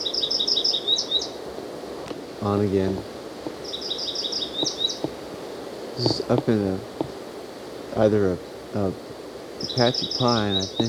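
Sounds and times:
bird chirping from a tree: 0:00.0 - 0:01.4, 0:03.6 - 0:05.2, 0:06.0 - 0:07.1, 0:09.6 - 0:10.8
outdoor noise: 0:00.0 - 0:10.8
speech: 0:02.4 - 0:03.1, 0:06.0 - 0:06.9, 0:08.0 - 0:09.1, 0:09.7 - 0:10.8.

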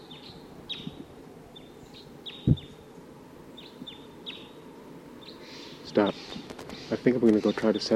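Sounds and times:
low outdoor rumble: 0:00.0 - 0:07.9
wild bird calling with high thin downward-sweeping chirps: 0:00.0 - 0:07.9
dull thump: 0:02.4 - 0:02.7
speech: 0:06.0 - 0:06.3, 0:07.0 - 0:07.9.

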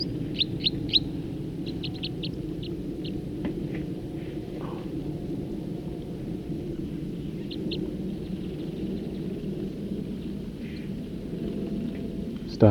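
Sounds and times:
songbird singing in quick runs of high thin chirps: 0:00.0 - 0:03.2, 0:06.7 - 0:12.6
low rumbling background: 0:00.0 - 0:12.6.

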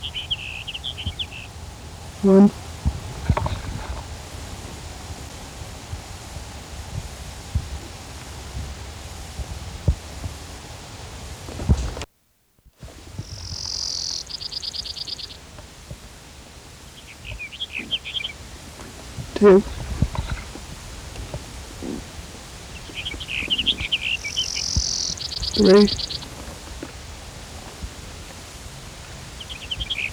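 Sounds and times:
Sage Sparrow song: 0:00.0 - 0:05.3, 0:12.9 - 0:15.4, 0:16.7 - 0:20.6, 0:21.6 - 0:26.5, 0:28.5 - 0:30.1
frogs calling: 0:00.0 - 0:05.3, 0:12.9 - 0:15.6, 0:16.5 - 0:30.1
insects chirping: 0:00.0 - 0:12.0, 0:12.8 - 0:30.1
speech: 0:02.2 - 0:02.6, 0:19.4 - 0:19.7, 0:25.6 - 0:26.0.

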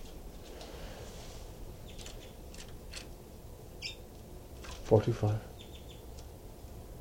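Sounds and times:
two birds chittering to each other: 0:01.8 - 0:02.6, 0:03.7 - 0:04.1, 0:05.2 - 0:06.2.

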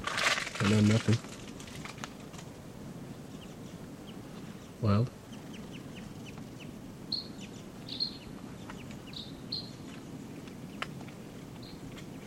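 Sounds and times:
steady background noise: 0:00.0 - 0:12.2
speech: 0:00.6 - 0:01.3, 0:04.8 - 0:05.2
Type 2 red crossbill calling from a ponderosa pine: 0:02.2 - 0:12.2.

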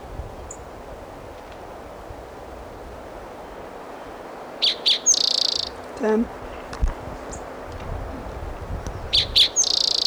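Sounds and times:
faint wind: 0:00.0 - 0:10.0
Virginia's warbler singing: 0:03.4 - 0:10.0
speech: 0:06.0 - 0:06.4.

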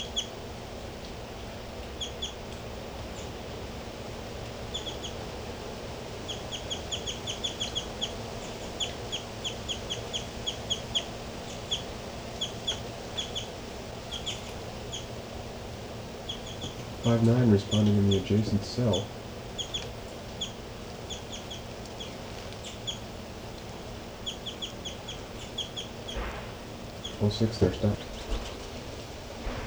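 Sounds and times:
hiss: 0:05.6 - 0:29.6
bird giving short high chirps: 0:06.3 - 0:15.1, 0:16.2 - 0:23.1, 0:24.2 - 0:28.8
speech: 0:17.1 - 0:19.2, 0:27.2 - 0:28.1.

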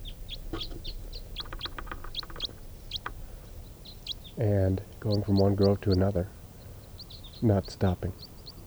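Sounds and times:
steady low background rumble: 0:00.0 - 0:08.6
wild crossbills flight calls flying over: 0:00.0 - 0:08.6
speech: 0:04.4 - 0:06.4, 0:07.4 - 0:08.3.

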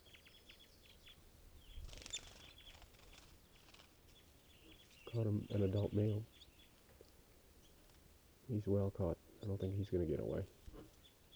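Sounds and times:
adult male western tanager flapping in a mist net: 0:01.8 - 0:04.2
speech: 0:05.1 - 0:06.3, 0:08.5 - 0:10.6.

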